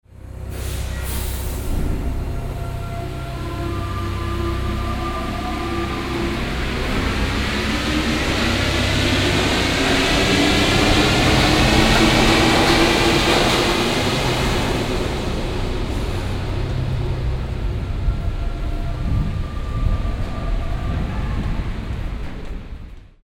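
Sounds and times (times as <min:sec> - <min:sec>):
Paris subway train leaving: 0:00.1 - 0:23.2.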